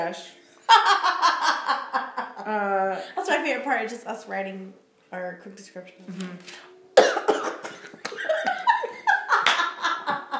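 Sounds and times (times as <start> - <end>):
speech: 0.0 - 1.3, 2.4 - 6.7
laughter: 0.7 - 2.5, 8.1 - 10.3
person coughing after choking on a breath: 7.0 - 8.0.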